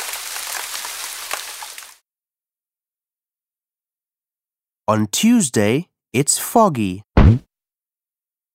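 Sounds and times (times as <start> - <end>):
steady rain: 0.0 - 2.0
speech: 4.9 - 7.5.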